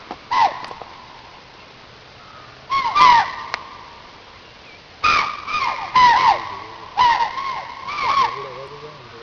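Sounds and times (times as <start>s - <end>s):
chital giving quick shrill falling barks: 0.3s - 0.7s, 2.7s - 3.6s, 5.0s - 8.7s.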